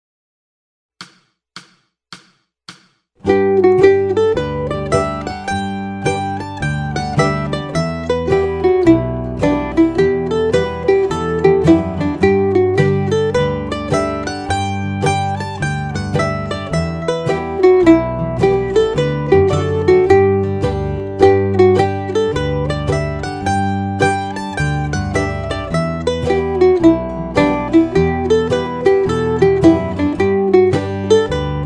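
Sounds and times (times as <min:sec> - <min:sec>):
slow reel played on mandolin: 0:03.2 - 0:31.6.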